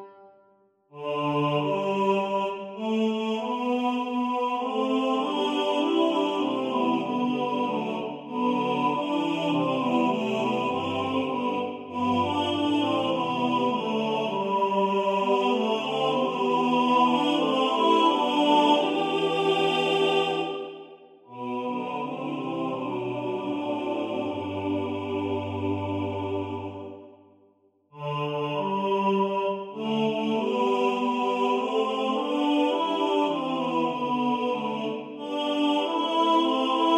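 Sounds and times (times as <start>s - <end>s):
first tenor singing in the foreground of a male choir: 1.0s - 27.0s, 28.0s - 36.9s.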